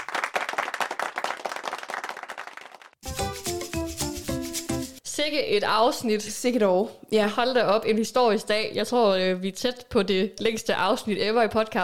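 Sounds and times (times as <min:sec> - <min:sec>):
hands clapping: 0:00.0 - 0:05.0
bright musical jingle with clear tones: 0:03.0 - 0:05.0
speech: 0:05.2 - 0:11.8.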